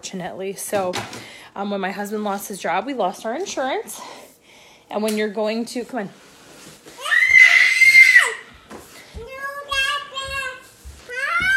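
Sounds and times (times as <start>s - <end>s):
speech: 0.0s - 4.2s, 4.9s - 6.2s
young child screaming: 7.0s - 8.5s, 11.1s - 11.5s.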